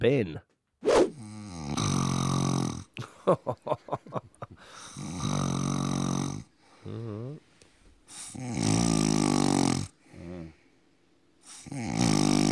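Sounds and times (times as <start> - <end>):
speech: 0.0 - 1.0, 3.2 - 4.2
sleeping man snoring with mouth open: 1.1 - 2.9, 4.9 - 7.4, 8.2 - 10.6, 11.5 - 12.5
laughter: 3.0 - 4.6.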